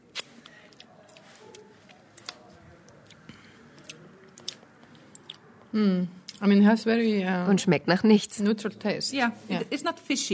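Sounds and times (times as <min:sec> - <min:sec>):
chewing and mouth sounds while tasting fish protein powder: 0:00.0 - 0:06.4
speech: 0:05.7 - 0:10.3.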